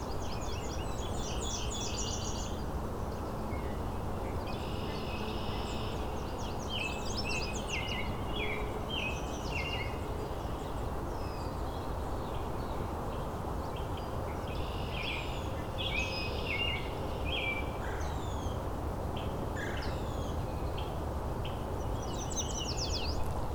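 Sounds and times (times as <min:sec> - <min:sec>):
Nashville warbler singing: 0:00.0 - 0:18.6, 0:19.2 - 0:23.5.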